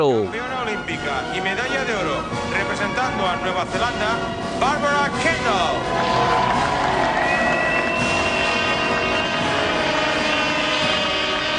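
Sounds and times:
speech: 0.0 - 6.6
large crowd of New Zealand fans cheering in stadium stands at Olympic medal presentation: 5.7 - 11.3
sustained whistle-like tones: 5.9 - 11.4.

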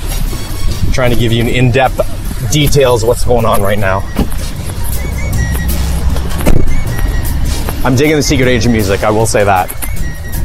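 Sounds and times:
parked car engine rumbling: 0.0 - 10.4
speech: 1.0 - 4.3, 7.8 - 9.8
car door clunk as passengers get out: 4.0 - 7.8.

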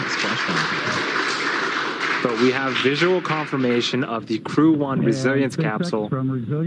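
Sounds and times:
applause in mission control: 0.0 - 4.4
speech: 2.2 - 6.6.

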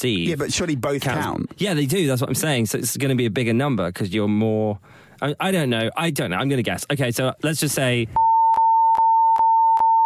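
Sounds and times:
speech: 0.0 - 8.2
steady high-pitched censor beep tone: 8.2 - 10.0.

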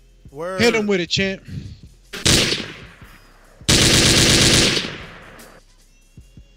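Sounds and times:
speech: 0.3 - 1.6
automatic gunfire sound effects: 2.2 - 2.9, 3.7 - 5.2.

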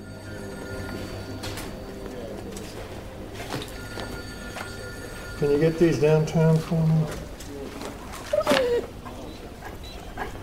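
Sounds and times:
speech: 5.4 - 7.2
dog whining outdoors on a rainy night in New York: 8.1 - 10.4
dog giving a sharp bark-like yelp: 8.2 - 10.1.

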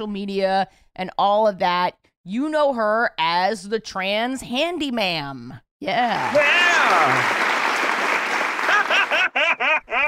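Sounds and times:
speech: 0.0 - 7.6
canned applause sound effect: 6.1 - 9.4
people cheering and whooping: 6.1 - 9.4
laughter: 8.3 - 10.0.

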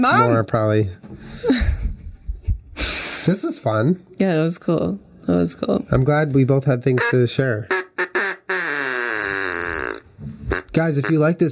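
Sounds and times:
speech: 0.0 - 1.8, 3.2 - 7.8, 10.8 - 11.4
duck call quacking: 7.0 - 11.2.

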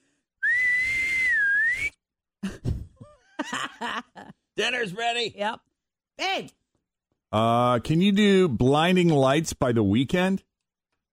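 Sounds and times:
loud piercing human whistle: 0.4 - 2.0
laughter: 2.4 - 4.5
speech: 3.8 - 6.6, 7.3 - 10.5.

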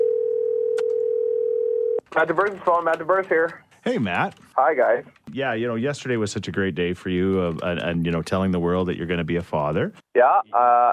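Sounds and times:
telephone dial tone while placing call: 0.0 - 2.0
speech: 2.2 - 10.9.

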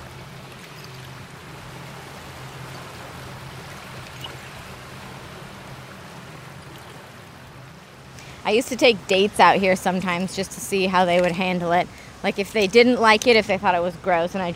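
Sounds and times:
sea water washing over broken glass at a former landfill by the sea: 0.0 - 1.4, 3.6 - 4.6
speech: 8.5 - 14.5.

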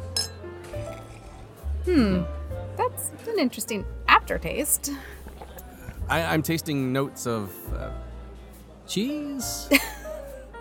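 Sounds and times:
wine glasses clinking in a toast at a restaurant dinner: 0.0 - 1.1
speech: 1.8 - 2.4, 3.3 - 5.2, 6.1 - 8.1, 8.9 - 9.9.

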